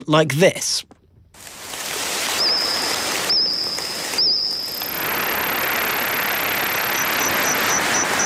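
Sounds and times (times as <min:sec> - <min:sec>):
steady hissing noise: 0:00.0 - 0:08.2
speech: 0:00.1 - 0:00.9
insects chirping and trilling: 0:01.4 - 0:08.2
thin sustained whine: 0:02.1 - 0:08.2.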